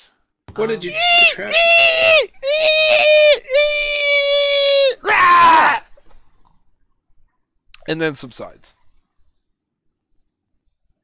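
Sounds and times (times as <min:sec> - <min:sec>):
speech: 0:00.0 - 0:03.6, 0:07.9 - 0:08.8
person imitating a screeching door: 0:00.9 - 0:05.8.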